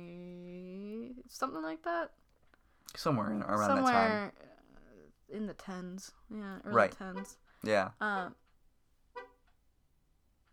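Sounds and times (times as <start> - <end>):
speech: 1.3 - 2.2, 2.9 - 4.4, 5.3 - 8.4
car horn honking: 9.1 - 9.4.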